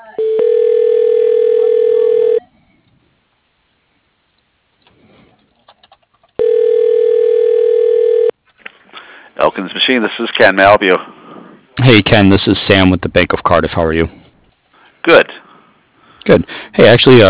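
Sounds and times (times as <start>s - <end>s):
telephone ringback tone while a call is being transferred: 0.2s - 2.5s, 6.4s - 8.3s
speech: 9.9s - 11.2s, 11.8s - 14.2s, 15.1s - 15.4s, 16.3s - 17.2s.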